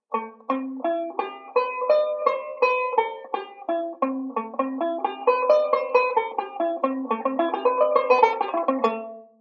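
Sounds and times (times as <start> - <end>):
banjo playing a modal speed drill: 0.0 - 9.3.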